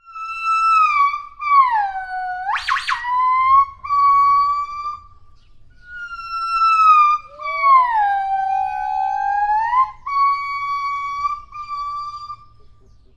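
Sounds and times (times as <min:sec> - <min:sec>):
gibbon calling: 0:00.0 - 0:13.1.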